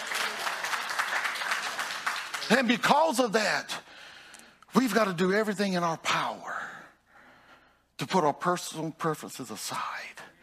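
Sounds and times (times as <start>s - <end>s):
audience in a church applauding: 0.0s - 3.0s
speech: 2.5s - 3.8s, 4.7s - 6.6s, 8.0s - 10.2s.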